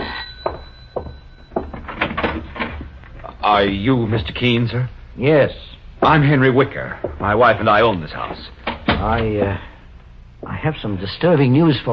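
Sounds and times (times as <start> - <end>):
house front door unlatched and pulled open with clicks, rattle and creak: 0.0 - 3.4, 6.0 - 9.7
speech: 3.4 - 9.7, 10.6 - 11.9.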